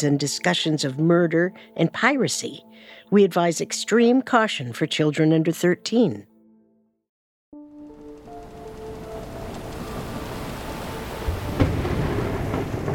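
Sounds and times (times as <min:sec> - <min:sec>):
speech: 0:00.0 - 0:06.3
steady rain over the water: 0:07.7 - 0:12.9
gusting wind over the water: 0:08.2 - 0:12.9
deep rolling thunder above North Carolina's coast at night: 0:08.4 - 0:12.9
sharp thunder crack: 0:09.6 - 0:12.9.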